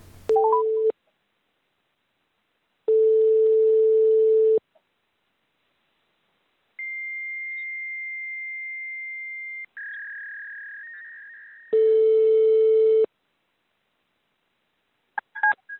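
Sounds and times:
telephone line ringing tones while calling detention centres: 0:02.9 - 0:04.6, 0:11.7 - 0:13.1.

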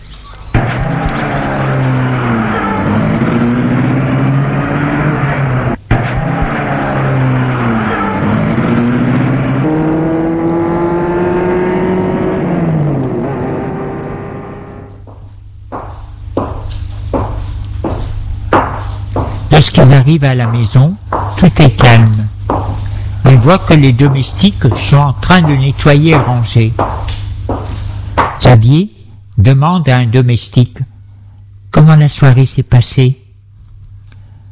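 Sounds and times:
sharp knocks: 0:00.6 - 0:04.2, 0:15.0 - 0:28.5
car engine starting and driving off through gear changes: 0:00.6 - 0:15.1
speech: 0:19.6 - 0:22.2, 0:23.4 - 0:26.9, 0:28.5 - 0:30.8, 0:31.8 - 0:33.2.

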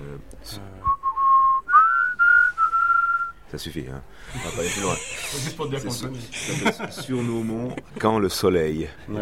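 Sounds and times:
speech: 0:00.2 - 0:00.9, 0:03.5 - 0:09.2
person whistling a national anthem: 0:00.8 - 0:03.4
laughter: 0:04.3 - 0:08.3.

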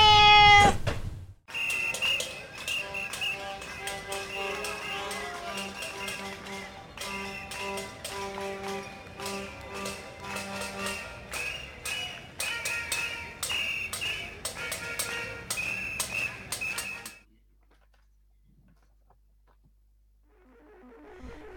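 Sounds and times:
cat meowing: 0:00.0 - 0:00.7
sustained musical tones: 0:01.5 - 0:17.1
tapping percussion in a steady musical bed: 0:01.5 - 0:17.2.

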